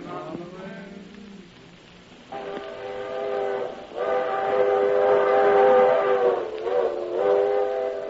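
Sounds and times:
small locomotive whistle blasts in a railroad yard: 0:02.3 - 0:08.0.

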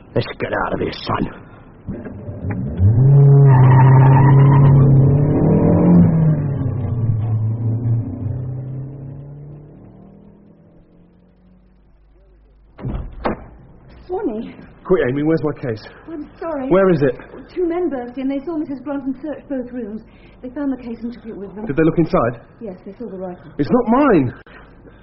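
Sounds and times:
speech: 0:00.2 - 0:03.2, 0:14.9 - 0:24.6
car engine driving past: 0:01.9 - 0:12.1
sharp knock: 0:12.8 - 0:13.6.

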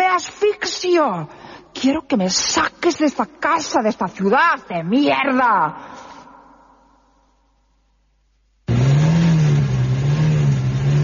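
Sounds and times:
speech: 0:00.2 - 0:06.0
car engine revving: 0:08.7 - 0:11.0.

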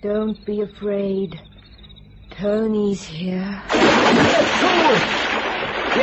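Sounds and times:
speech: 0:00.0 - 0:01.5, 0:02.4 - 0:06.0
person jumping into a pool: 0:03.7 - 0:06.0.

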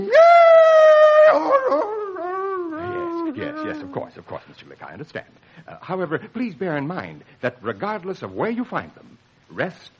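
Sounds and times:
single coyote howling and yipping: 0:00.0 - 0:04.1
speech: 0:03.7 - 0:09.9.

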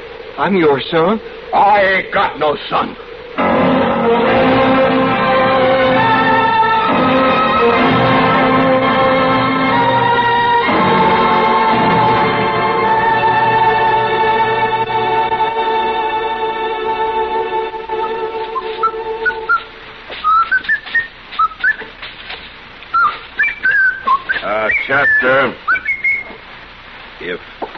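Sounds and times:
steady hum: 0:00.0 - 0:27.7
speech: 0:00.4 - 0:03.5
man whistling a lilting melody: 0:18.0 - 0:21.9, 0:22.9 - 0:26.4.

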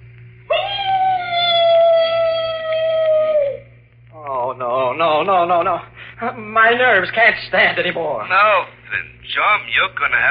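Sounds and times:
mournful dog howl sound effect: 0:00.5 - 0:03.8
speech: 0:05.0 - 0:10.2.

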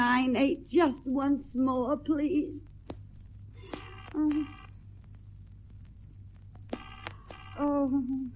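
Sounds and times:
steady low electrical hum: 0:00.0 - 0:08.3
speech: 0:00.2 - 0:02.7, 0:04.1 - 0:04.6, 0:07.6 - 0:08.3
telephone line ringing on an unanswered operator-placed call heard through a receiver: 0:06.8 - 0:07.6.

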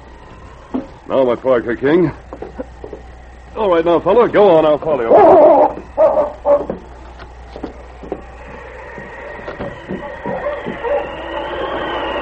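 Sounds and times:
speech: 0:01.1 - 0:02.2, 0:03.6 - 0:05.8
several dogs barking, yelping and fighting by a creek bank: 0:05.0 - 0:12.2.

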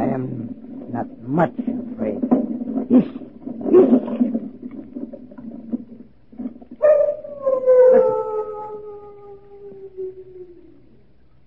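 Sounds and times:
speech: 0:01.0 - 0:01.7, 0:02.9 - 0:04.0
large dogs howling: 0:06.8 - 0:11.0.

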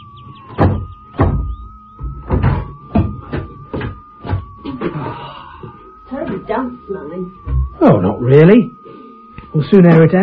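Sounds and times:
faint steady whine: 0:00.0 - 0:10.2
swollen stuck door forced open with thumps and scraping shoves: 0:00.5 - 0:04.6
speech: 0:06.5 - 0:08.8, 0:09.5 - 0:10.2.

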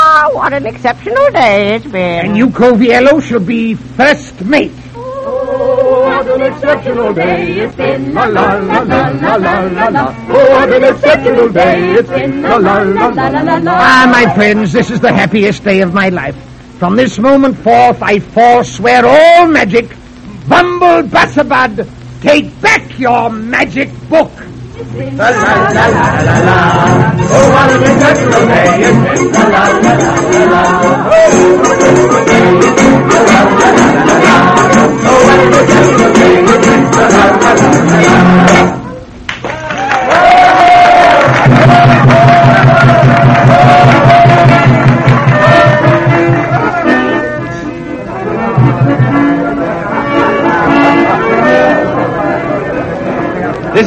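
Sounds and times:
speech: 0:00.4 - 0:05.4, 0:06.2 - 0:38.8
large crowd cheering and chattering after a courtyard performance: 0:04.9 - 0:09.2, 0:24.4 - 0:53.8.

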